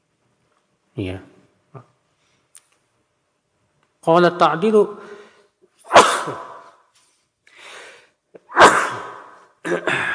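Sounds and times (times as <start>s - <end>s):
speech: 1.0s - 1.9s, 4.0s - 5.2s, 6.3s - 6.5s
soft breathy inhale: 5.0s - 5.5s, 7.5s - 8.2s
loud sneezes: 5.8s - 6.9s, 7.7s - 10.1s.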